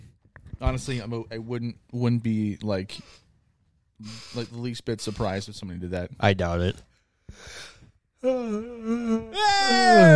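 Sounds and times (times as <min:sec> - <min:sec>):
speech: 0:00.6 - 0:03.2, 0:04.0 - 0:10.1
person yawning with a moaning groan: 0:08.2 - 0:10.1.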